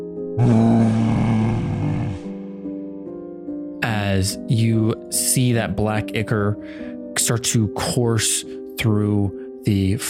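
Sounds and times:
speech: 0:00.4 - 0:00.8, 0:04.2 - 0:10.0
voice imitating the deep roar of a frost elemental: 0:00.4 - 0:02.3.

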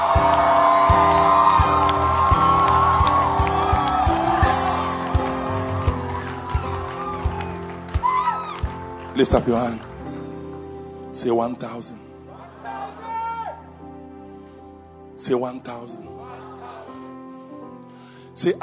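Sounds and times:
large crowd screaming and cheering: 0:00.0 - 0:10.4, 0:12.3 - 0:13.8
speech: 0:09.2 - 0:09.9, 0:11.2 - 0:12.0, 0:15.3 - 0:16.3, 0:18.4 - 0:18.6.

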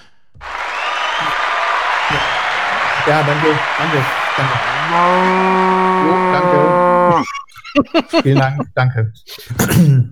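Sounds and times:
recorded crowd applause played from a soundboard: 0:00.4 - 0:07.2
laughter: 0:00.4 - 0:09.0
speech: 0:03.1 - 0:10.0.

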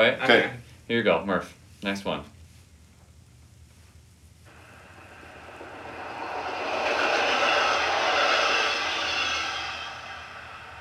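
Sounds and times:
speech: 0:00.0 - 0:02.4
train rumbling past on the rails: 0:04.5 - 0:10.7.

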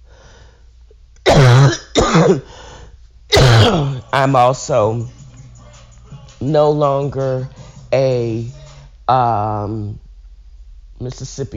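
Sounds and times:
harsh throaty voiced coughs: 0:01.2 - 0:02.6, 0:03.3 - 0:04.0
speech: 0:02.0 - 0:02.6, 0:03.5 - 0:05.2, 0:06.4 - 0:10.0, 0:11.0 - 0:11.5.

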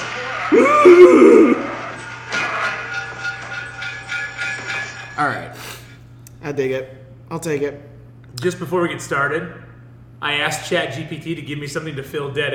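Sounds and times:
speech: 0:00.5 - 0:01.6, 0:05.2 - 0:05.4, 0:06.5 - 0:12.5
male scream sound effect: 0:00.5 - 0:01.8.

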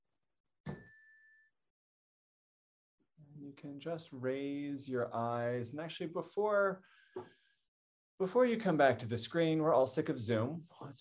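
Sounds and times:
single bell strike ringing: 0:00.7 - 0:01.1
speech: 0:03.4 - 0:07.4, 0:08.2 - 0:10.9.

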